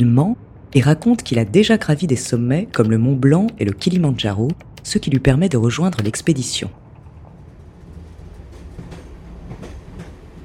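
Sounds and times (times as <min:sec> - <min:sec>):
speech: 0:00.0 - 0:06.8
faint rhythmic clacks of commuter train on rails: 0:02.7 - 0:10.4
suburban commuter train rumbling along the rails: 0:06.8 - 0:10.4.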